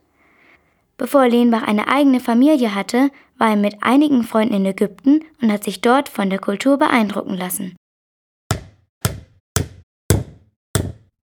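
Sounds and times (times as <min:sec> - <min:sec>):
speech: 0:01.0 - 0:07.8
hammer driving nails into a wooden door in a palace: 0:08.5 - 0:11.2.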